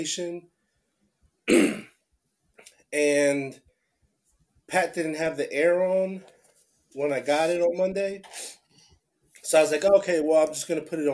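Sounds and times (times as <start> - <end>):
speech: 0.0 - 0.6, 2.9 - 3.6, 4.7 - 6.3, 6.9 - 8.6, 9.4 - 11.1
harsh throat-clearing cough: 1.5 - 2.0
faint breath or small vocal noise: 8.3 - 9.1.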